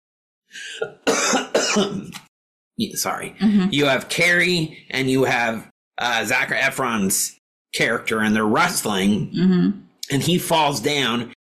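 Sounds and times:
speech: 0:00.5 - 0:01.0, 0:01.8 - 0:11.4
forceful harsh coughs: 0:00.6 - 0:02.2
rasping throat clearing: 0:00.6 - 0:02.2.

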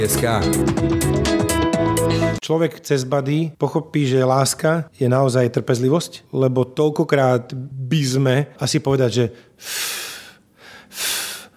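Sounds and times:
speech: 0:00.0 - 0:10.1
deliberate calming zen breathing: 0:09.4 - 0:11.5.

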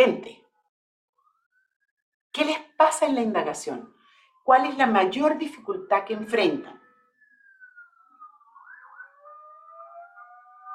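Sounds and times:
speech: 0:00.0 - 0:00.4, 0:02.4 - 0:06.8
ambulance sirens wailing past: 0:03.8 - 0:10.7.

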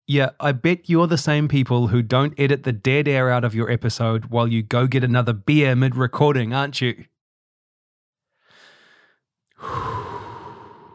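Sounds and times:
speech: 0:00.1 - 0:07.1, 0:09.6 - 0:10.0
deep breathing: 0:08.3 - 0:10.9.

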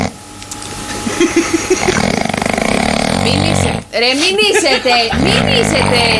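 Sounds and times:
laughter: 0:01.0 - 0:02.2, 0:04.1 - 0:06.1
speech: 0:01.3 - 0:02.0, 0:03.3 - 0:06.1
loud rattling snoring recorded by a sleep tracker app: 0:01.8 - 0:04.0, 0:04.9 - 0:06.1.

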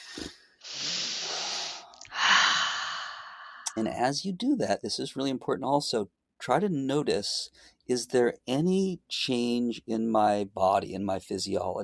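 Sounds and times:
long deep breath during a guided mood-shifting exercise: 0:00.0 - 0:03.8
speech: 0:03.8 - 0:11.8.

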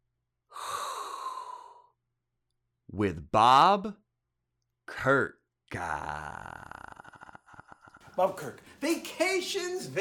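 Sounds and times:
person inhaling a hot breath: 0:00.5 - 0:02.0
speech: 0:02.9 - 0:04.0, 0:04.9 - 0:06.6, 0:08.2 - 0:09.9.

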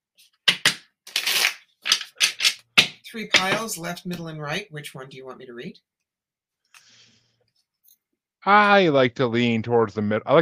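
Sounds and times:
deck of tarot cards being shuffled for a tarot card reading: 0:00.2 - 0:03.5
speech: 0:03.1 - 0:06.0, 0:08.4 - 0:10.4.

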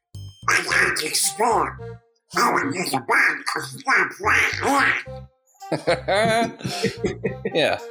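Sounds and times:
person doing a raspy garbled cartoon-duck voice: 0:00.5 - 0:01.8, 0:02.4 - 0:05.1
speech: 0:00.5 - 0:07.8
laughter: 0:05.7 - 0:07.8.

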